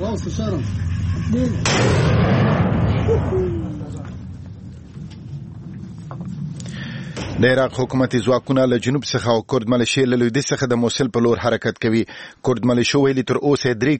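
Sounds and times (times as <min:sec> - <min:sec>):
low steady drone: 0:00.0 - 0:08.1
speech: 0:00.2 - 0:04.1, 0:07.4 - 0:13.9
artillery fire on the outskirts of Mosul during a military offensive: 0:01.6 - 0:03.6.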